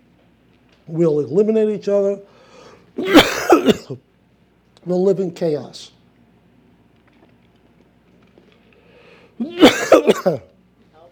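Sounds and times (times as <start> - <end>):
speech: 0.9 - 2.3, 3.0 - 4.1, 4.8 - 6.0, 9.4 - 10.5
person clearing their throat: 3.0 - 4.0, 9.4 - 10.5
person coughing: 3.0 - 4.0, 9.4 - 10.5.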